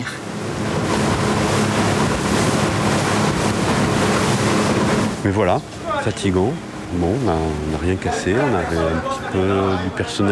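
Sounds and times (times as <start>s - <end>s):
boat engine rumbling at sea: 0.0s - 10.3s
water rushing at sea: 0.0s - 10.3s
speech: 5.3s - 10.3s.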